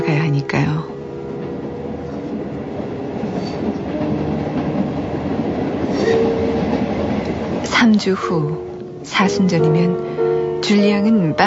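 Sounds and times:
1944 passenger train rolling along the rails: 0.0s - 11.4s
speech: 7.9s - 10.0s, 10.6s - 11.4s.

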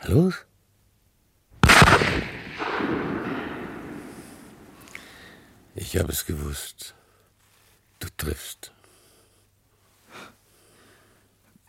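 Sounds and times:
speech: 0.0s - 0.5s, 5.8s - 7.0s, 8.0s - 8.8s
gunshot: 1.6s - 4.8s.

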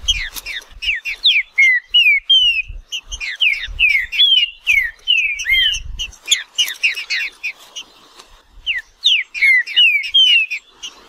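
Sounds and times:
wild green-winged saltator singing in woodland: 0.0s - 7.6s, 8.6s - 11.0s.

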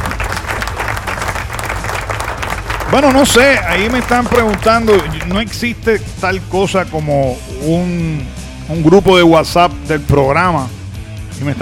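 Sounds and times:
crowd applauding: 0.0s - 5.6s
speech: 2.9s - 10.8s, 11.4s - 11.6s.

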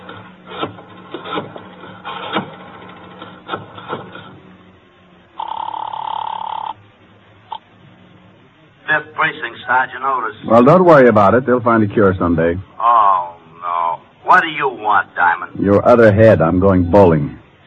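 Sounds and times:
telephone bell ringing: 5.4s - 6.8s
speech: 9.3s - 13.0s, 14.3s - 17.4s.

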